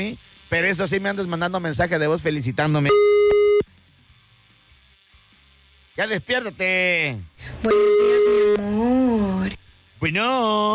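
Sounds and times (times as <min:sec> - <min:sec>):
speech: 0:00.0 - 0:03.1, 0:06.0 - 0:10.7
mid-pitched phone line tone while dialing a call: 0:07.6 - 0:08.6.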